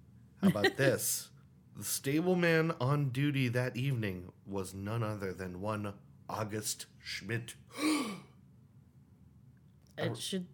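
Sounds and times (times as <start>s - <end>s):
speech: 0.4s - 8.2s, 10.0s - 10.5s
theatrical breathy gasp: 7.7s - 8.3s.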